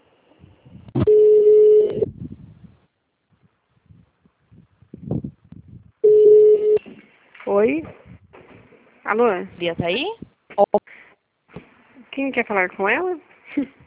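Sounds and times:
telephone tones while a call is transferred: 1.0s - 2.0s, 6.0s - 6.8s
speech: 9.1s - 10.2s, 12.2s - 13.8s.

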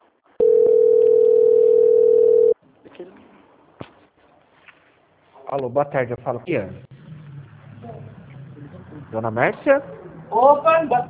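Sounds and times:
telephone call-transfer tone beep: 0.4s - 2.6s
speech: 5.5s - 6.9s, 9.1s - 11.0s.

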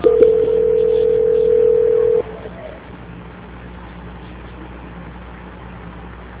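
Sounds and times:
telephone tone while a call is being transferred: 0.0s - 2.2s.

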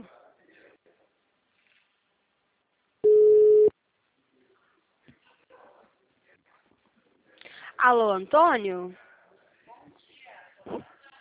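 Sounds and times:
telephone ring tone on an outgoing call: 3.0s - 3.7s
speech: 7.8s - 9.0s.

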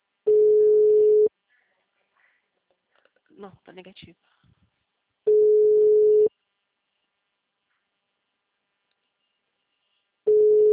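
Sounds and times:
telephone ringback tone while calling someone: 0.3s - 1.3s, 5.3s - 6.3s, 10.3s - 10.7s
speech: 3.4s - 4.6s.

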